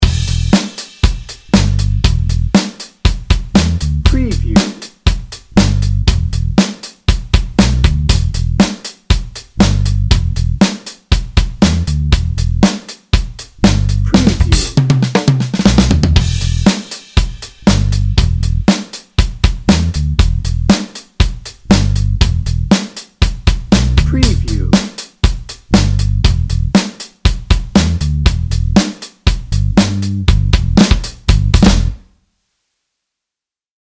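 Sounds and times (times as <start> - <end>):
drum and bass beat: 0.0 - 32.0
funky bouncing guitar: 13.9 - 14.8, 24.0 - 24.8.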